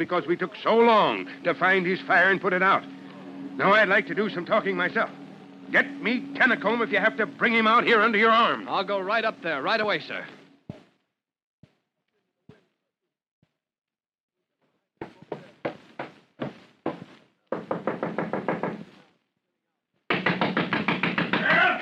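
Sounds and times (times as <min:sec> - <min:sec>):
speech: 0:00.0 - 0:03.0, 0:03.6 - 0:10.4
loud knocking on a door: 0:15.0 - 0:18.9, 0:20.1 - 0:21.7.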